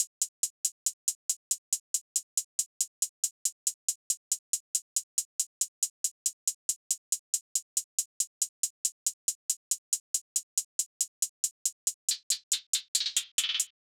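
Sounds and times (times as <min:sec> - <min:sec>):
hip hop hi-hat drum loop at 139 BPM: 0:05.6 - 0:13.7.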